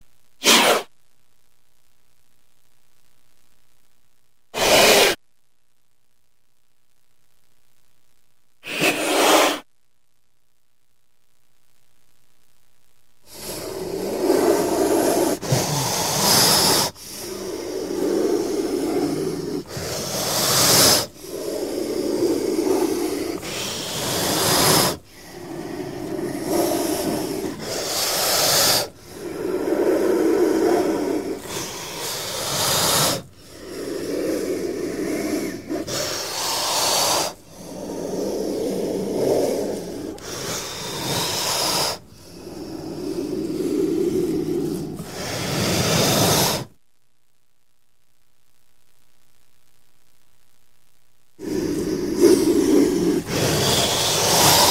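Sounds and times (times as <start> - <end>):
snake calling: 0.4 - 0.8, 4.6 - 5.2, 8.6 - 9.6, 13.3 - 46.7, 51.4 - 54.7.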